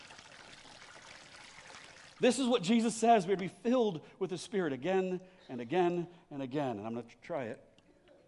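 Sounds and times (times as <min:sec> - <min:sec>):
water pouring into a container: 0:00.0 - 0:02.9
speech: 0:02.2 - 0:07.7.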